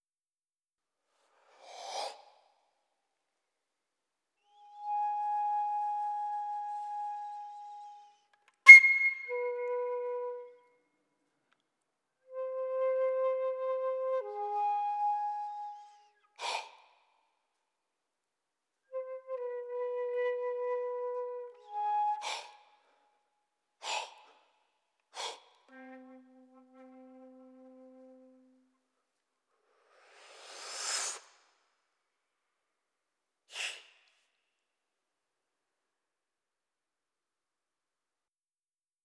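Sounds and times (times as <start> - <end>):
flute: 4.5 - 10.6, 12.3 - 16.6, 18.9 - 22.8, 25.7 - 28.7.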